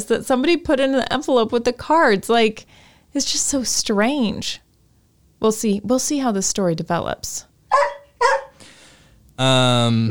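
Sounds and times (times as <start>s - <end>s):
speech: 0.0s - 4.6s, 5.4s - 8.3s, 9.4s - 10.0s
male dog barking: 7.7s - 8.6s.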